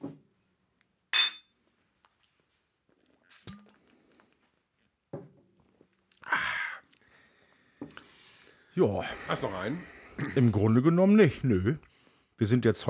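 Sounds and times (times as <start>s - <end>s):
glasses clinking in a toast: 1.1s - 1.5s
speech: 8.8s - 12.8s.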